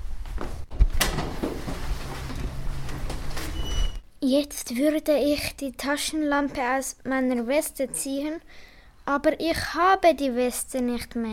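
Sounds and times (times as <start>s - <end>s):
door scraping as it swings in a dark corridor: 1.0s - 4.1s
speech: 4.2s - 11.3s.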